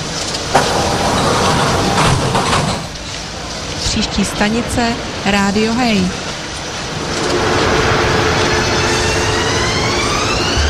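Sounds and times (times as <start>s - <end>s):
train doors sliding shut: 0.0s - 3.7s, 6.3s - 10.6s
train departing with a broadband rumble: 0.0s - 10.6s
speech: 4.0s - 6.2s.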